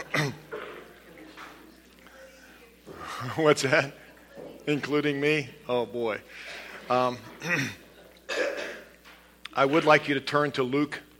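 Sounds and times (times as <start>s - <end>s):
throat clearing from the group: 0.0s - 0.9s, 7.4s - 8.9s
audience coughing together before a sermon: 0.0s - 1.1s, 6.4s - 9.0s
speech: 3.2s - 4.0s, 4.7s - 7.8s, 9.6s - 11.1s.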